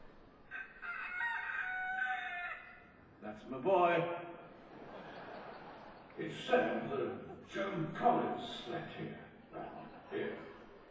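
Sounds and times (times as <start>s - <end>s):
rooster crowing: 0.5s - 2.9s
speech: 3.4s - 4.4s, 6.2s - 9.2s
laughter: 4.5s - 7.6s, 9.4s - 10.8s.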